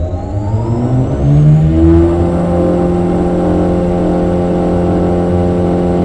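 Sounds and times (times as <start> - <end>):
armoured personnel carrier driving in first gear: 0.0 - 6.0.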